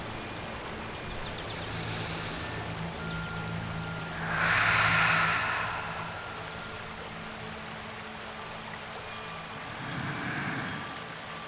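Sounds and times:
low hum: 0:00.0 - 0:11.4
slow deep breathing of person lying on their back: 0:01.3 - 0:11.4.

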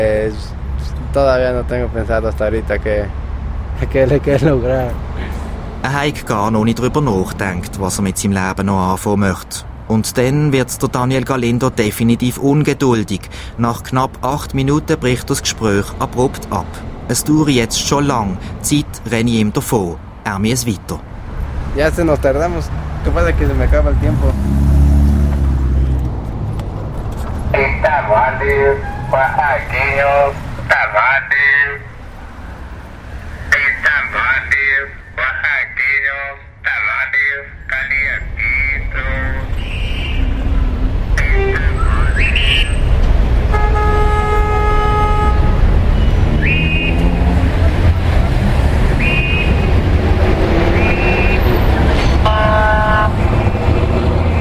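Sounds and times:
speech: 0:00.0 - 0:03.2, 0:03.8 - 0:05.0, 0:05.8 - 0:21.1, 0:21.8 - 0:24.6, 0:27.5 - 0:31.9
street traffic engine rumble: 0:00.0 - 0:54.3
car horns honking in street traffic: 0:27.6 - 0:30.4, 0:38.4 - 0:47.6, 0:48.8 - 0:54.3.

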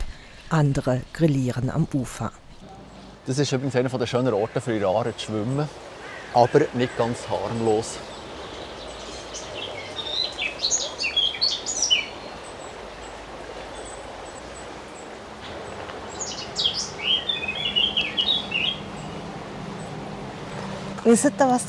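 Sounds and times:
speech: 0:00.5 - 0:02.4, 0:03.2 - 0:08.1, 0:21.0 - 0:21.6
steady rushing hiss: 0:02.0 - 0:21.6
Eurasian blackcap singing warbling phrases: 0:05.5 - 0:20.8.

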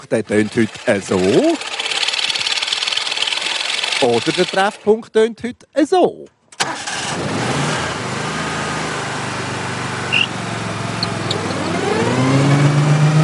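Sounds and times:
speech: 0:00.0 - 0:01.8, 0:04.0 - 0:07.5
lawnmower engine running and revving: 0:00.0 - 0:05.0, 0:06.6 - 0:12.6.

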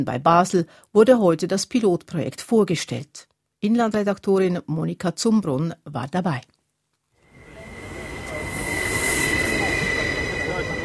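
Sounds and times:
speech: 0:00.0 - 0:06.5
high-pitched train wheel squeal: 0:07.3 - 0:10.8
regional train rolling into a station: 0:07.3 - 0:10.8.

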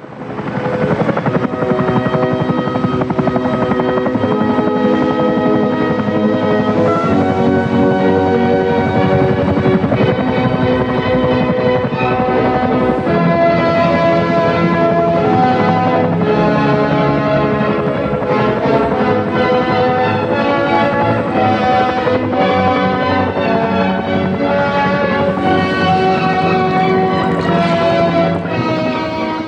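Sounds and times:
helicopter rotor and engine noise in flight: 0:00.0 - 0:29.4.

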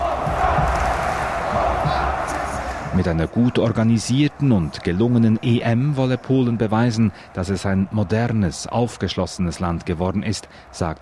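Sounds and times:
crowd of 56000 spectators cheering in National Stadium Warsaw Poland: 0:00.0 - 0:11.0
speech: 0:03.0 - 0:11.0.

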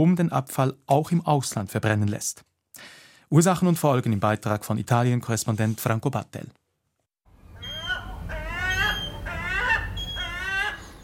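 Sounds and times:
speech: 0:00.0 - 0:06.6
gulls circling over Rome crying: 0:07.5 - 0:11.0.

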